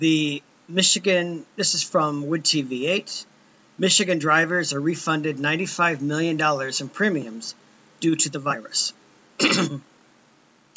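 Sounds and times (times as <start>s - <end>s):
speech: 0.0s - 9.9s
throat clearing with a raspy cough-like burst: 9.4s - 9.9s.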